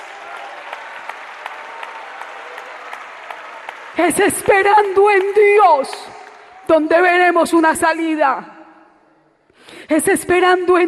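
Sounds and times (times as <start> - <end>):
church congregation applauding: 0.0 - 6.9
speech: 4.0 - 8.5, 9.9 - 10.8.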